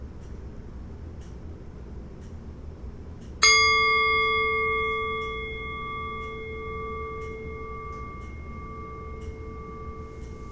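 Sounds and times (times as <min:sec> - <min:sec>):
meditation bell ringing: 0:03.4 - 0:10.5.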